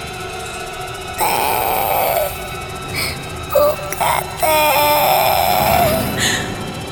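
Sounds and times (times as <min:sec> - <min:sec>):
small child crying in wavering wails: 0:01.2 - 0:06.6.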